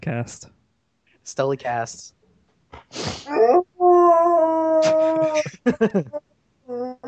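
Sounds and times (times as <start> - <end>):
speech: 0.0 - 0.6, 1.2 - 3.7, 4.8 - 6.3
dog howling with yips and whimpering barks inside a house: 3.3 - 5.4
laughter: 4.8 - 6.2.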